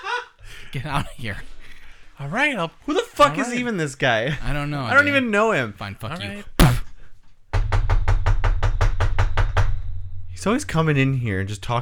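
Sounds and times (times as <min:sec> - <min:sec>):
speech: 0:00.7 - 0:01.6, 0:02.2 - 0:06.5, 0:10.4 - 0:11.8
knocking on a door: 0:07.5 - 0:10.0.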